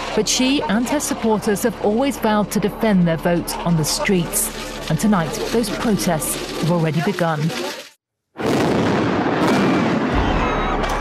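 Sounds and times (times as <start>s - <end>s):
speech: 0.2s - 7.8s
stun grenade explosions: 8.4s - 10.8s.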